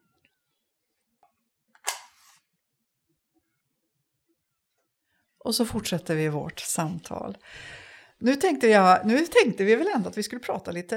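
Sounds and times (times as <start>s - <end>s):
match struck to light a candle: 1.9s - 2.4s
speech: 5.4s - 10.9s.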